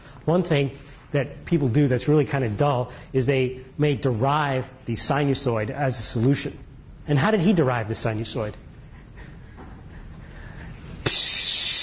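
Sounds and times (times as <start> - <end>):
speech: 0.2 - 8.6
spray paint can hissing: 11.0 - 11.8.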